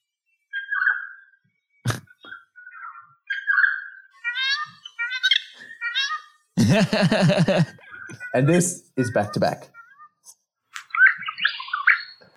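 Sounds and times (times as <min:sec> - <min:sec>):
Regent Honeyeater singing song learnt from a noisy friarbird: 0:00.0 - 0:06.5, 0:07.7 - 0:10.2, 0:10.8 - 0:12.3
laughter: 0:06.6 - 0:07.8
speech: 0:06.7 - 0:09.8.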